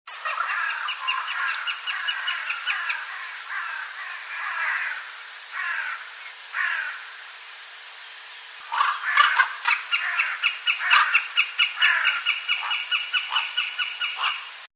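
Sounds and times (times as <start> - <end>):
Accipiter gentilis calling: 0.2 - 5.0, 8.6 - 14.5.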